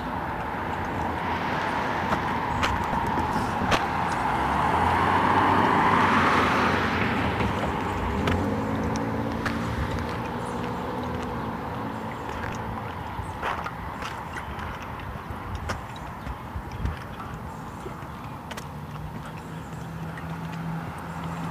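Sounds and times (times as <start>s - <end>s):
single car passing by: 0.0s - 13.8s
steady outdoor noise: 0.0s - 21.4s.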